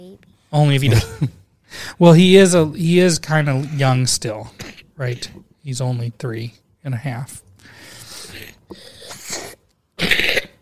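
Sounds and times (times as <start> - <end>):
speech: 0.0 - 7.9, 8.7 - 9.4
person coughing: 4.5 - 5.0, 9.0 - 10.6.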